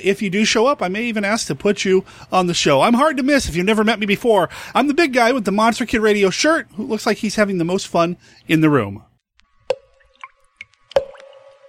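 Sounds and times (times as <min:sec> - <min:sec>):
speech: 0:00.0 - 0:09.1
dripping blood sound effect: 0:09.6 - 0:11.6.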